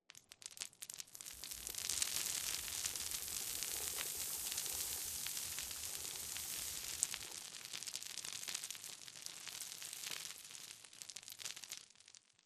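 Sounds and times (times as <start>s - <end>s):
small rock debris falling: 0.1s - 12.4s.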